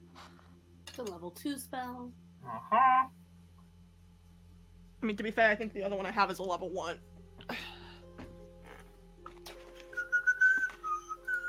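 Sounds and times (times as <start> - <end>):
speech: 1.0 - 3.2, 5.0 - 7.6
person whistling a video game tune: 9.5 - 11.4.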